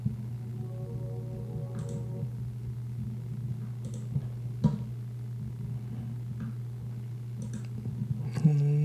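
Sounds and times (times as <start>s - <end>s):
steady low electrical hum: 0.0s - 8.8s
computer mouse clicks while browsing on a computer: 7.4s - 7.7s.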